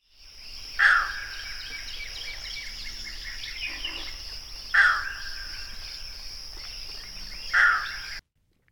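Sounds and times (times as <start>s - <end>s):
chorus of buzzing insects: 0.0s - 8.2s
green heron squawking: 0.8s - 1.6s, 3.5s - 5.8s, 7.4s - 8.2s.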